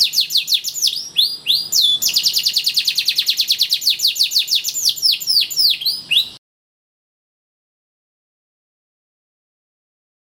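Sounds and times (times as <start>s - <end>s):
canary song trill and downward-sweeping whistles: 0.0s - 6.4s.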